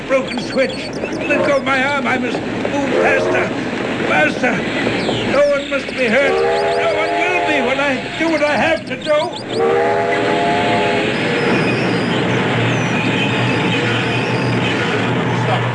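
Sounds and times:
track noise and clatter: 0.0 - 15.7
train rumbling on rails: 0.0 - 15.7
speech: 0.1 - 10.6
train horn blast: 2.8 - 3.6, 6.2 - 8.2, 9.6 - 11.4.

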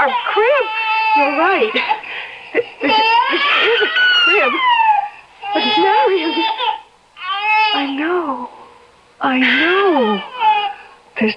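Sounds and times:
baby crying in a hand-carved crib: 0.0 - 2.0, 2.8 - 8.2, 9.2 - 10.9
speech: 0.0 - 4.8, 9.2 - 10.4, 11.2 - 11.3.

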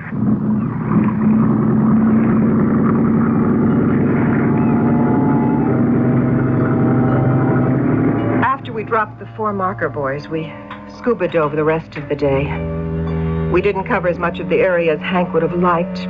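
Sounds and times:
dive motorboat engine revving up at sea: 0.0 - 16.0
speech: 8.9 - 12.7, 13.5 - 16.0.

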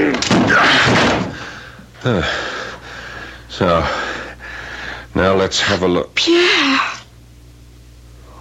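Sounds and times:
locked apartment door forced open with splintering crash: 0.1 - 1.5
speech: 2.1 - 2.5, 3.6 - 4.0, 5.1 - 6.9
person calling out: 6.2 - 7.1.

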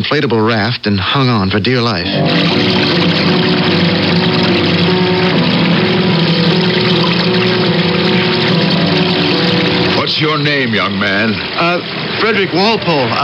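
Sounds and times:
speech: 0.1 - 3.9, 10.2 - 13.2
airplane engines failing before ditching in ocean: 2.1 - 13.2.

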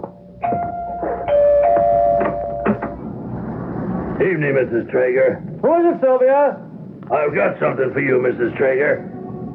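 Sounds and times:
clattering and knocking: 0.0 - 3.5
doorbell ringing with a bright electric tone: 0.2 - 2.9
speech: 4.2 - 9.1.

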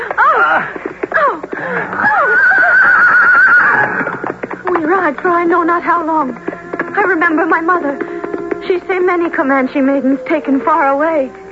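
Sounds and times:
horse neighing: 0.3 - 4.4
speech: 5.1 - 11.5.

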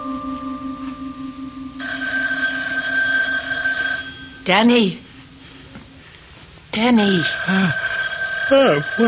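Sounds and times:
telephone ringing with a bright electronic trill: 1.8 - 6.1, 6.7 - 9.0
speech: 4.5 - 5.0, 6.7 - 7.9, 8.5 - 9.0.

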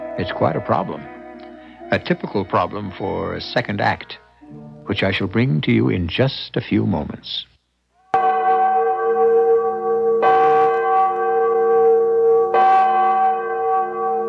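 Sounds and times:
large deep bell tolling: 0.0 - 5.3, 8.2 - 14.2
speech: 0.2 - 1.2, 1.9 - 4.2, 4.9 - 7.5.

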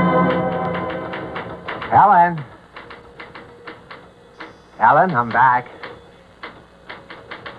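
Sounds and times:
crisp typewriter keystrokes: 0.1 - 7.5
faint steady hiss: 1.9 - 7.5
speech: 5.0 - 5.8.

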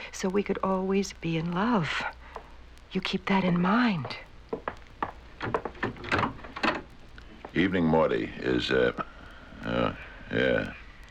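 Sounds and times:
speech: 0.1 - 2.2, 2.9 - 4.6, 7.6 - 10.8
wooden door being opened: 5.4 - 6.9.

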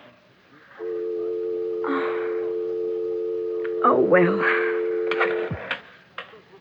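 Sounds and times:
steady telephone dial tone: 0.8 - 5.5
speech: 4.1 - 4.6
telephone receiver hung up with a clatter: 5.1 - 5.8.

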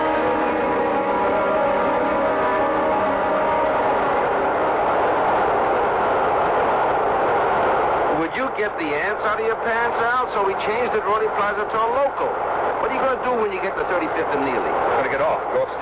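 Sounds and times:
subway train rumbling: 0.0 - 15.8
speech: 8.6 - 15.8.

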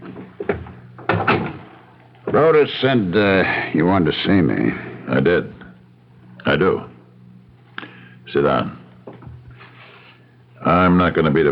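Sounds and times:
door pushed shut and latching: 0.0 - 2.4
speech: 2.3 - 5.6, 6.4 - 6.9, 8.3 - 8.8, 10.6 - 11.5.

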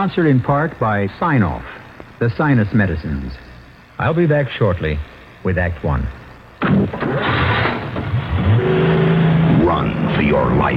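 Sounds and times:
speech: 0.0 - 7.9, 9.8 - 10.7
car engine revving as the car is driven away: 6.9 - 10.7.

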